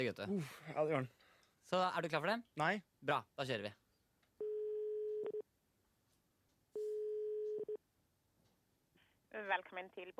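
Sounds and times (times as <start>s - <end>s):
speech: 0.0s - 3.8s, 9.3s - 10.1s
ringback tone of an outgoing telephone call: 4.4s - 5.4s, 6.8s - 7.8s.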